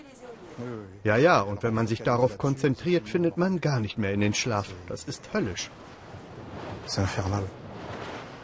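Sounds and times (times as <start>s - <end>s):
speech: 0.6s - 6.0s, 6.8s - 7.6s
wind turbines whooshing at night about 540 meters from a house: 4.4s - 8.4s.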